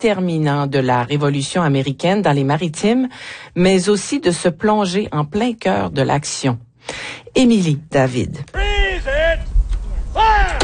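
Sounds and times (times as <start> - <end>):
speech: 0.0 - 8.6
loud raised voices calling out: 8.5 - 9.4
musket shots at historical reenactment of 1776 siege: 10.5 - 10.6.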